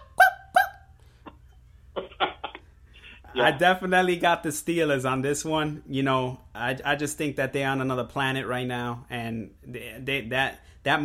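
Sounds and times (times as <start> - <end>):
dog barking: 0.0 - 0.9
speech: 3.3 - 11.0.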